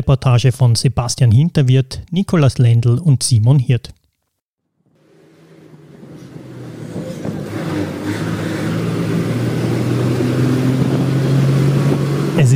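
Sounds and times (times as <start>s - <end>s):
speech: 0.0s - 4.0s
bus interior road noise: 4.6s - 12.5s
bus engine droning with deep low rumble: 5.0s - 12.5s.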